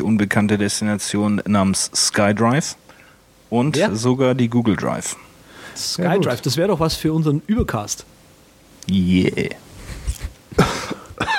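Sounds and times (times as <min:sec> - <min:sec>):
speech: 0:00.0 - 0:02.9, 0:03.5 - 0:08.1, 0:08.8 - 0:09.6
low noise: 0:00.0 - 0:11.3
single sharp cough: 0:10.6 - 0:11.3.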